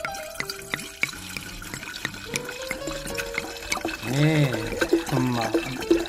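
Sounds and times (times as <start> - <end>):
drink pouring into a glass for a toast: 0.0 - 6.0
speech: 4.2 - 4.6.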